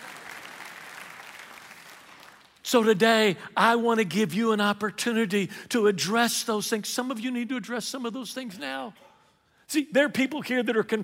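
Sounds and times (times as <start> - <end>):
audience applause: 0.0 - 2.6
speech: 2.7 - 9.1, 9.7 - 11.0.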